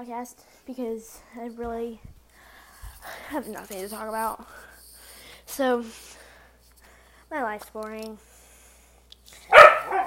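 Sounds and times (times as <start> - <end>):
speech: 0.0 - 2.2, 3.0 - 4.7, 5.5 - 6.2, 7.3 - 8.3
dog barking and yelping: 9.5 - 10.0.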